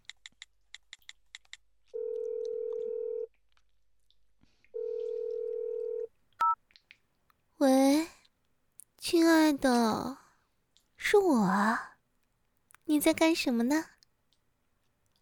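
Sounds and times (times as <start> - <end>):
long steady telephone ringing tones: 2.0 - 3.3, 4.8 - 6.6
short clear telephone keypad dialing beeps: 4.8 - 6.6
speech: 9.5 - 10.2, 11.1 - 11.9, 13.0 - 13.9.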